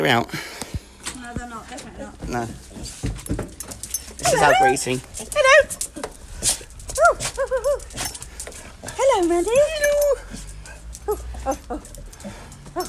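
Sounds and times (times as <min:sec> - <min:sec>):
speech: 0:00.0 - 0:00.5, 0:02.3 - 0:02.6, 0:04.3 - 0:05.8, 0:09.1 - 0:10.2, 0:11.1 - 0:12.0
light shuffling noise: 0:01.2 - 0:12.8
excited dog whimpering in greeting: 0:04.2 - 0:06.0, 0:06.9 - 0:12.8.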